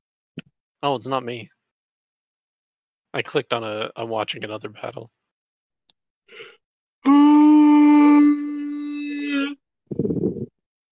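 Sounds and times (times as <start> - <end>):
speech: 0.8 - 1.6, 3.1 - 5.2, 6.3 - 7.4
person yawning: 6.3 - 9.6.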